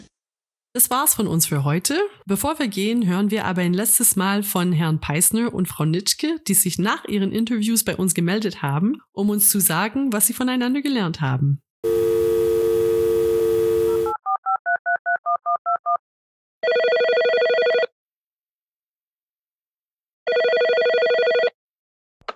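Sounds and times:
speech: 0:00.8 - 0:12.3
telephone ringing: 0:11.8 - 0:16.0, 0:16.6 - 0:17.9, 0:20.3 - 0:21.6.

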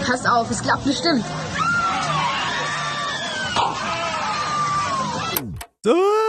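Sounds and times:
speech: 0:00.1 - 0:01.6, 0:05.8 - 0:06.1
crowd of riders screaming on a roller coaster: 0:01.5 - 0:05.4.

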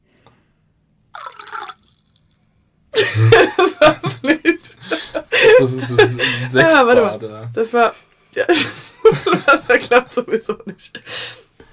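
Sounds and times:
last drops of water dripping into a bathtub: 0:01.2 - 0:02.5
laughter: 0:03.0 - 0:07.2, 0:08.4 - 0:11.4
speech: 0:03.2 - 0:04.0, 0:05.6 - 0:11.4.

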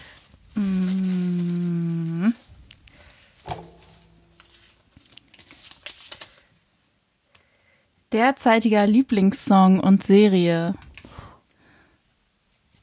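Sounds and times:
paper crinkling and rustling: 0:00.0 - 0:06.5
person humming a steady tone: 0:00.6 - 0:02.5
speech: 0:08.2 - 0:10.8.

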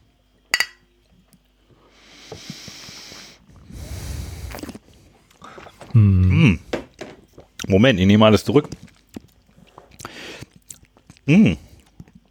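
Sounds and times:
glasses of elderflower lemonade clinking in a toast: 0:00.6 - 0:00.8
speech: 0:06.0 - 0:06.6, 0:07.7 - 0:08.8, 0:11.3 - 0:11.6.

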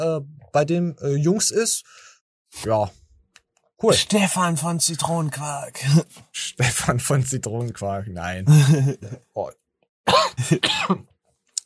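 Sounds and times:
speech: 0:00.0 - 0:03.0, 0:03.8 - 0:11.1
laughter: 0:08.4 - 0:09.3
short dry coughs: 0:10.1 - 0:11.1.

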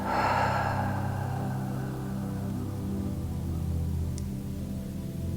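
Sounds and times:
deep breath in through the nose and out through the mouth: 0:00.0 - 0:03.9
soft sustained low tones: 0:00.0 - 0:05.2.

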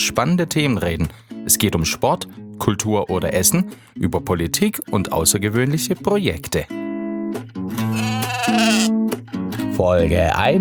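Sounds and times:
speech: 0:00.0 - 0:07.8, 0:09.8 - 0:10.5
sheep bleating: 0:07.8 - 0:08.9.

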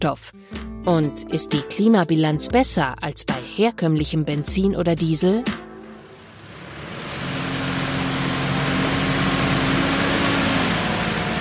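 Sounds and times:
speech: 0:00.0 - 0:05.7
tractor engine revving on a test bench: 0:05.6 - 0:11.3.

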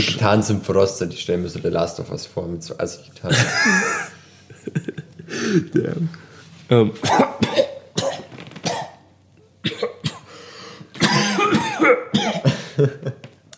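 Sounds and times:
speech: 0:00.0 - 0:07.7
laughter: 0:03.3 - 0:05.8, 0:12.6 - 0:13.3
person coughing after inhaling lint from a sock: 0:07.0 - 0:09.0, 0:09.6 - 0:10.3, 0:11.0 - 0:13.0.

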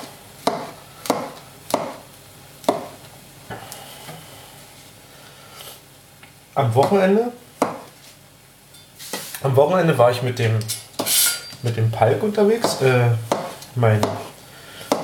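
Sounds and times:
knife chopping mushrooms into small pieces: 0:00.0 - 0:03.0, 0:06.8 - 0:07.0, 0:07.6 - 0:07.9, 0:12.2 - 0:15.0
speech: 0:06.6 - 0:07.4, 0:09.4 - 0:10.9, 0:11.6 - 0:14.3.

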